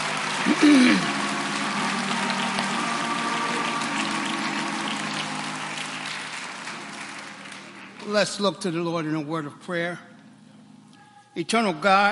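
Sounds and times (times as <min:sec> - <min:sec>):
audience clapping: 0:00.0 - 0:09.2
speech: 0:00.6 - 0:01.1, 0:08.1 - 0:10.1, 0:11.4 - 0:12.1.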